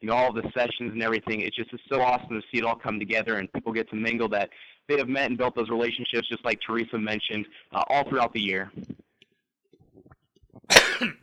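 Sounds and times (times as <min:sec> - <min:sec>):
speech: 0:00.0 - 0:09.0, 0:10.6 - 0:11.2
faint breathing: 0:04.5 - 0:04.9, 0:07.4 - 0:07.8
person coughing from a tickle in the throat: 0:10.7 - 0:11.2.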